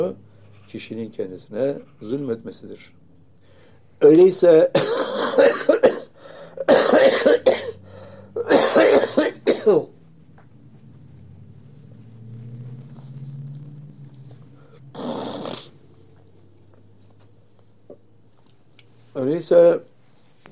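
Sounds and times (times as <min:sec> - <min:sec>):
speech: 0:00.0 - 0:03.0, 0:04.0 - 0:05.7, 0:09.6 - 0:10.0, 0:19.2 - 0:19.9
person coughing: 0:04.7 - 0:09.9.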